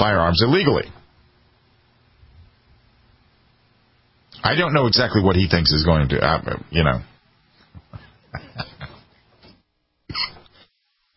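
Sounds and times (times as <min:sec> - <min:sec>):
speech: 0:00.0 - 0:01.0, 0:04.4 - 0:07.1
person laughing in short breathy bursts: 0:07.7 - 0:09.2, 0:10.1 - 0:10.5
person coughing: 0:10.1 - 0:10.5.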